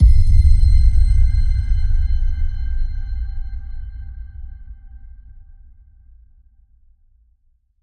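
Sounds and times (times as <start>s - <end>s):
pin drop soft boom: 0.0s - 5.4s.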